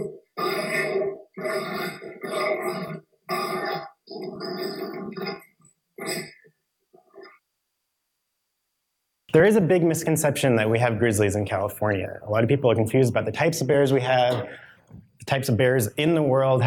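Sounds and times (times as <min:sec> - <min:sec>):
adopted dogs grunting and growling: 0:00.0 - 0:07.4
speech: 0:09.4 - 0:14.6, 0:15.3 - 0:16.6.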